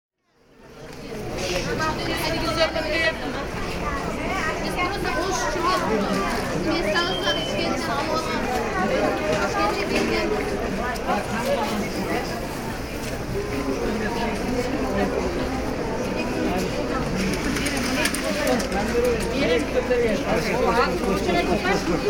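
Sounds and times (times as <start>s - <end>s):
bazaar ambience in Central Asia: 0.2s - 22.0s.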